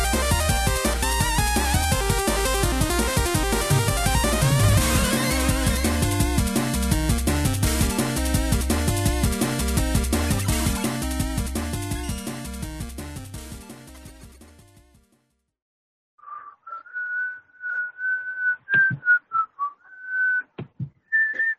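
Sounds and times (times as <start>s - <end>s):
music: 0.0s - 15.5s
person whistling a simple tune: 16.2s - 20.5s, 21.1s - 21.5s.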